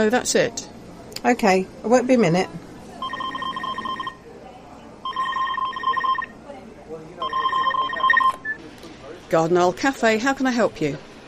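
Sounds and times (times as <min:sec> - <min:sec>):
speech: 0:00.0 - 0:02.6, 0:09.3 - 0:11.1
faint murmur of noise: 0:00.0 - 0:11.2
telephone ringing in trilling bursts: 0:03.0 - 0:04.2, 0:05.0 - 0:06.4, 0:07.2 - 0:08.4.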